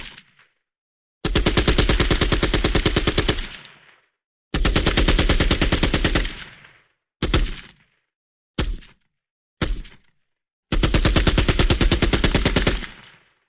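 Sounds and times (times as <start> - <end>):
M60 automatic machine gun firing: 1.3 - 3.9, 4.5 - 6.7, 10.7 - 13.3.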